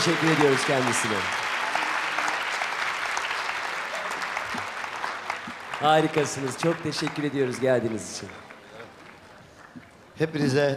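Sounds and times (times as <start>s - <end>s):
speech: 0.0s - 1.5s, 5.8s - 8.4s, 10.2s - 10.7s
sustained applause from a large audience: 0.0s - 10.1s.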